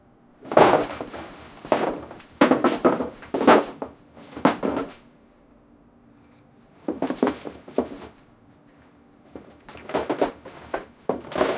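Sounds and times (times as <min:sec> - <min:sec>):
chairs falling: 0:00.4 - 0:05.0, 0:06.9 - 0:08.2, 0:09.4 - 0:11.5
scuffle: 0:00.4 - 0:05.0, 0:06.8 - 0:08.2, 0:09.3 - 0:11.5.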